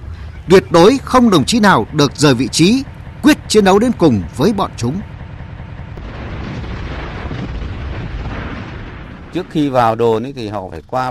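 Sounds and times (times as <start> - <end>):
speech: 0.5 - 5.1, 9.3 - 11.0
heavy artillery fire and explosions: 6.0 - 10.6.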